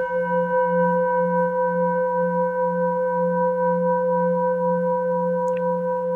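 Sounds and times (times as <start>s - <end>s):
Tibetan singing bowl ringing with pulsing beating: 0.0s - 6.1s.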